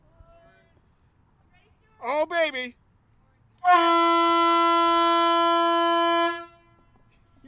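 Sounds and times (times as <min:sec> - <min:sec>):
speech: 0:02.0 - 0:02.8
loud steady ship's horn blast: 0:03.6 - 0:07.1.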